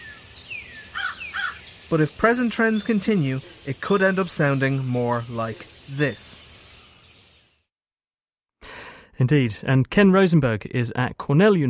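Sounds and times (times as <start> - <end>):
louder chirpy bird bursts: 0.0 - 7.6
woodland birds calling in the woods: 0.0 - 7.6
speech: 1.9 - 6.4, 9.2 - 11.6.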